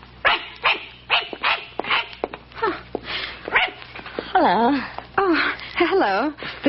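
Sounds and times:
small dog yapping with sharp barks: 0.2s - 2.2s, 3.5s - 3.8s
speech: 4.4s - 5.0s, 6.0s - 6.6s.

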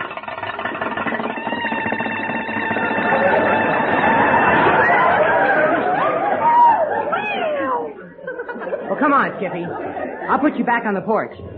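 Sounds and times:
hand-cranked old car engine starting and running: 0.0s - 5.2s
laughter: 2.6s - 11.2s
speech: 9.4s - 11.5s.

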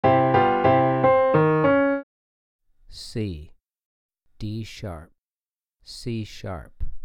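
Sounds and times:
three-note melodic piano phrase: 0.0s - 2.0s.

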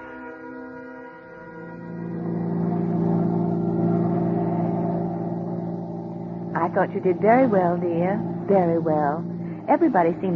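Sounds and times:
car engine drone from a vehicle driving along a parkway on an autumn night: 1.8s - 10.3s
speech: 6.7s - 10.3s.

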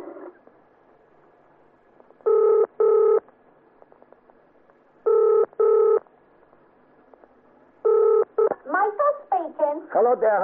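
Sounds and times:
telephone ringing tone purring through the line in double bursts: 2.2s - 3.2s, 5.0s - 6.0s, 7.8s - 8.5s
speech: 10.1s - 10.4s.

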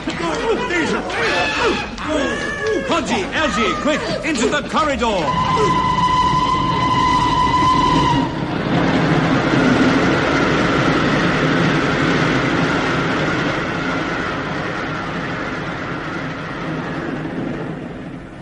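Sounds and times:
laughter: 0.0s - 5.0s
train running through a tunnel: 0.0s - 18.4s
speech: 0.5s - 6.0s
high train whistle: 5.2s - 8.4s.

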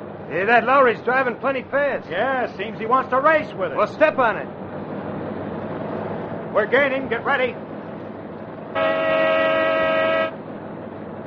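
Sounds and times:
speech: 0.3s - 4.6s, 6.5s - 7.6s, 8.7s - 9.4s
car horn blast from a pursuing car during a high-speed chase: 8.7s - 10.4s.

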